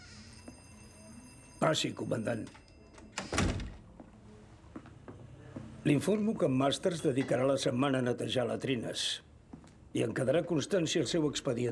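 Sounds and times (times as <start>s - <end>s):
speech: 1.6s - 2.6s, 5.9s - 9.3s, 10.0s - 11.7s
office door pushed open at an air base: 3.1s - 3.8s.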